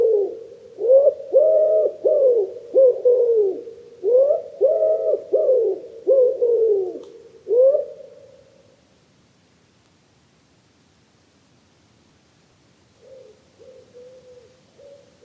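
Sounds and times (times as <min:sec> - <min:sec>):
common wood pigeon cooing: 0:00.0 - 0:08.4, 0:13.0 - 0:15.2.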